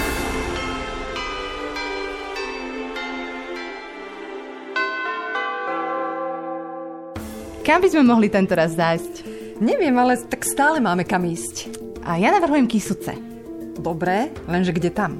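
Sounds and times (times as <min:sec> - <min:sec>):
church bells ringing: 0:00.0 - 0:09.0
speech: 0:07.7 - 0:15.1.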